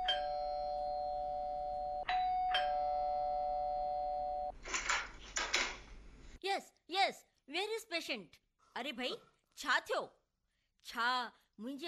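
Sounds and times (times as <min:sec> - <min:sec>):
electronic doorbell chime ringing: 0:00.0 - 0:04.5
clattering noise: 0:04.6 - 0:06.0
speech: 0:06.6 - 0:10.2, 0:10.8 - 0:11.8.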